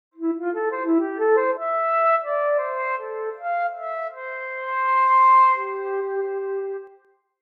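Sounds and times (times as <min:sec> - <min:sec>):
melodic flute intro: 0:00.2 - 0:07.0.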